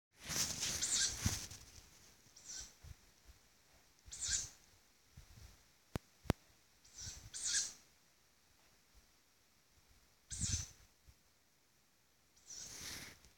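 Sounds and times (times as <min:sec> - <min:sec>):
unknown bird calling: 0:00.7 - 0:01.3, 0:02.4 - 0:02.8, 0:04.0 - 0:04.6, 0:06.9 - 0:07.8, 0:10.3 - 0:10.7.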